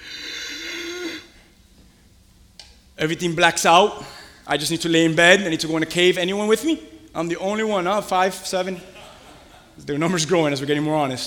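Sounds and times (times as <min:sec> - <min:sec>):
person imitating heavy panicked raspy breathing: 0:00.0 - 0:01.5, 0:04.0 - 0:04.5
speech: 0:03.0 - 0:08.9, 0:09.8 - 0:11.2
laughter: 0:08.7 - 0:10.4.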